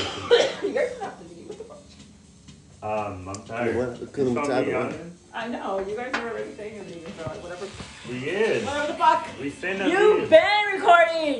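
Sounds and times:
person coughing close to the mic: 0.0s - 0.8s
speech: 2.8s - 11.3s.

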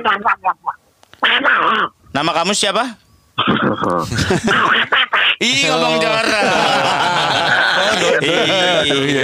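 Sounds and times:
person doing a cartoon duck voice impression: 0.0s - 2.0s, 3.4s - 6.2s
speech: 0.0s - 9.2s
laughter: 3.4s - 9.2s.

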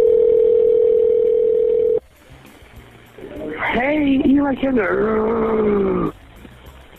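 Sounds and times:
phone ringback tone of a call to a kid's phone: 0.0s - 2.0s
speech: 4.5s - 6.1s.

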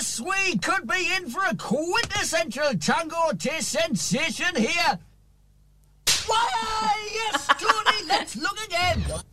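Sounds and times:
speech: 0.2s - 5.1s, 6.3s - 9.3s
hard sharp slap: 6.1s - 6.5s
laughter: 6.5s - 9.2s
person making strained drawn-out vocal sounds: 8.9s - 9.3s.

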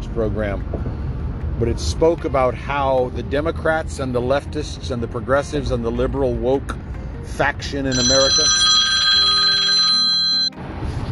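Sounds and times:
speech: 0.2s - 1.0s, 1.6s - 8.7s
telephone ringing with a bell-like trill: 7.9s - 10.6s.

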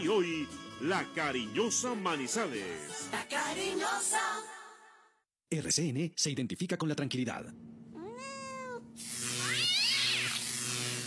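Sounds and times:
speech: 0.0s - 4.6s, 5.5s - 7.8s
cat meowing: 8.0s - 10.4s
loud steady hissing buzz: 9.0s - 11.0s.

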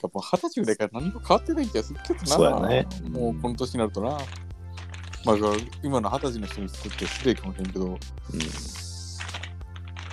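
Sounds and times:
speech: 0.0s - 4.5s, 5.2s - 8.8s
crunching of corn snack chips: 4.2s - 10.1s.

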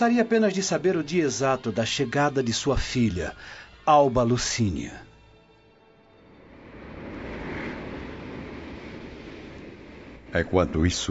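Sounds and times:
speech: 0.0s - 5.1s, 10.3s - 11.1s
gentle sea waves: 6.0s - 11.1s.

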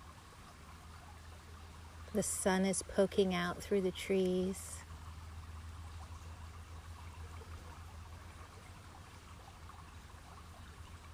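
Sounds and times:
flowing river water: 0.0s - 11.1s
speech: 2.1s - 4.8s.

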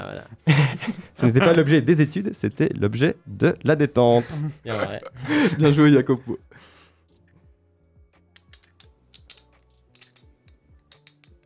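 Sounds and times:
speech: 0.1s - 6.7s
laughter: 0.5s - 1.4s, 4.2s - 5.8s
poker chips clicking and clacking as they are handled: 8.4s - 11.4s.

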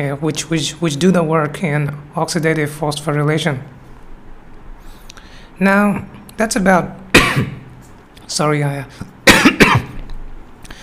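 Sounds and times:
speech: 0.0s - 3.8s, 5.6s - 7.6s, 8.3s - 9.1s
person with a lingering cough after a cold coughing: 7.1s - 7.6s, 9.2s - 10.0s.

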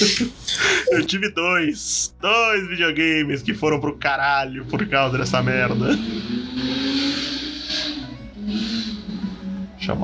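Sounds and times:
speech: 0.0s - 6.7s, 9.9s - 10.0s
motorbike engine revving and passing by outdoors: 5.3s - 10.0s.

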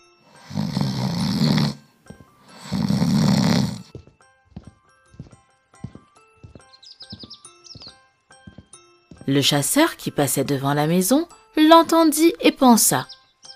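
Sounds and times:
loud rasping snores from a wolf asleep in a bed: 0.3s - 4.0s
hooves clip-clopping: 3.9s - 9.4s
faint bird chirps: 6.6s - 8.0s, 12.8s - 13.5s
speech: 9.3s - 13.1s.

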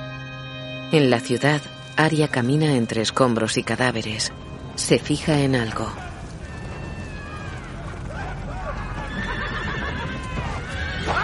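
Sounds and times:
speech: 0.9s - 6.1s
dense steady low rumble: 3.2s - 10.8s
horses neighing among mounted warriors in a city square strewn with rubble: 5.6s - 11.2s.

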